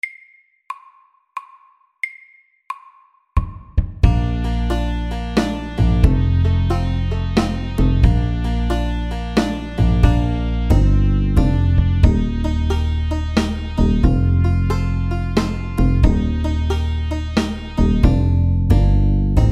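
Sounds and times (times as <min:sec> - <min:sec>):
slow country shuffle music at 90 bpm: 0:04.0 - 0:19.5.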